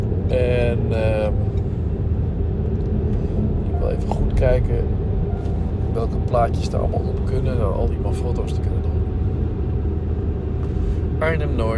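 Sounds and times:
bus engine rumbling on a road toward Arnhem-Noord: 0.0s - 11.7s
speech: 4.4s - 5.0s, 6.0s - 8.8s, 11.2s - 11.7s.

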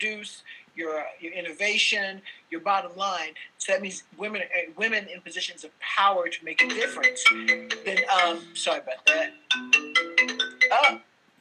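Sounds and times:
speech: 0.0s - 11.1s
mobile phone ringtone playing a short electronic melody: 6.6s - 11.0s.

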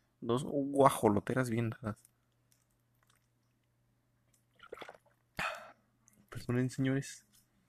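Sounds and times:
speech: 0.2s - 2.1s, 6.5s - 7.3s
liquid sloshing: 2.0s - 5.4s
person gulping a beverage: 2.6s - 6.3s.

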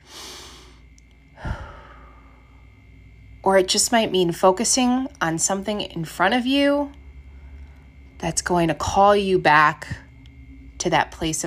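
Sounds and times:
deep breath: 0.0s - 2.7s
speech: 3.4s - 7.0s, 8.2s - 10.0s, 10.8s - 11.4s.

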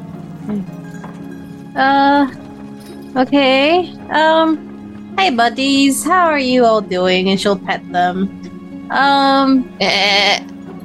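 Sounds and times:
speech: 0.5s - 0.8s, 1.8s - 2.4s, 3.1s - 10.5s
goat bleating: 9.8s - 10.5s.

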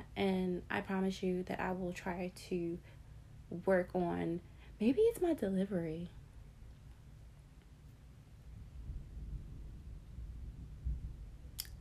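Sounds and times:
speech: 0.2s - 6.2s
thunder rumbling from a storm: 8.6s - 11.6s.

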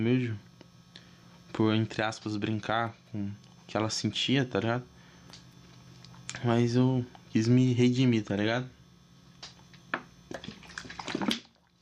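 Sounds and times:
speech: 0.0s - 0.5s, 1.6s - 4.9s, 6.4s - 8.8s
person gulping water: 9.4s - 11.7s.

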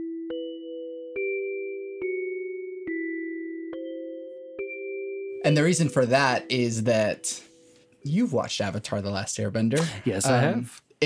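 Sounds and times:
bell-like tones forming a slow clear melodic line: 0.0s - 8.4s
speech: 5.4s - 11.0s.

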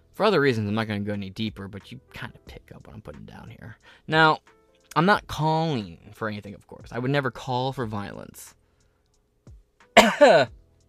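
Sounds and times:
speech: 0.2s - 8.6s, 10.0s - 10.6s
person coughing: 10.0s - 10.5s.

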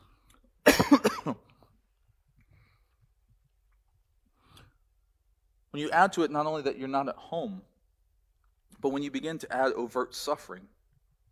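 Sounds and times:
coughing and throat clearing with rough hacks: 0.6s - 1.7s
speech: 5.8s - 7.7s, 8.8s - 10.8s.

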